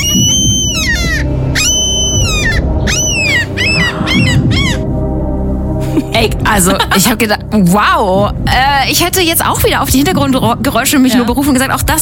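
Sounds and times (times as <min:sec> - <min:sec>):
seagull calling with harsh squealing cries: 0:00.0 - 0:04.9
speech: 0:06.2 - 0:12.0.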